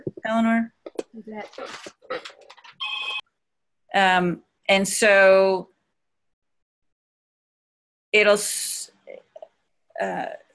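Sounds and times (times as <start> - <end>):
speech: 0.3 - 2.4, 3.9 - 5.7, 8.1 - 9.2, 10.0 - 10.4
telephone electronic ring burst: 2.7 - 3.2.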